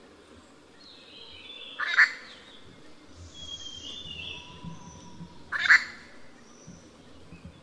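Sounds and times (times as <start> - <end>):
low rumbling noise: 0.0 - 7.6
Grey treepie rasping call at Yushan: 1.2 - 6.4.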